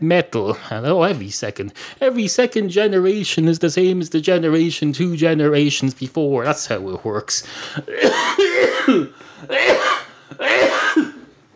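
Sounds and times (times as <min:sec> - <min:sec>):
speech: 0:00.0 - 0:11.1
person coughing with harsh hacking bursts: 0:07.8 - 0:11.4.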